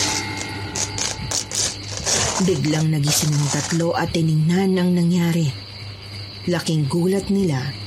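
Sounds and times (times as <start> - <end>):
electric fan humming: 0.0 - 4.8
speech: 2.4 - 5.7, 6.4 - 7.8.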